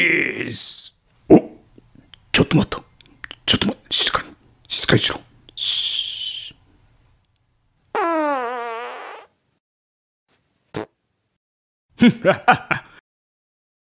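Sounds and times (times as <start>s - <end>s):
speech: 0.0s - 1.4s, 2.4s - 2.8s, 3.6s - 4.3s, 4.9s - 6.0s, 12.0s - 12.9s
fart sound effects: 7.9s - 9.4s, 10.7s - 11.0s.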